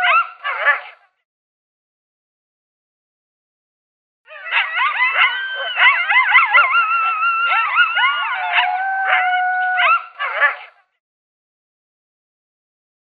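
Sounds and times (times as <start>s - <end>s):
coyotes howling and yipping together: 0.0s - 1.0s, 4.3s - 10.8s.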